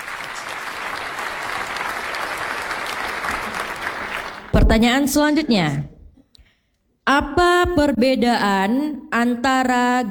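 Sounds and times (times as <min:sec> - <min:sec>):
audience applause for a quiz competition: 0:00.0 - 0:04.6
speech: 0:04.6 - 0:05.9, 0:07.1 - 0:10.0.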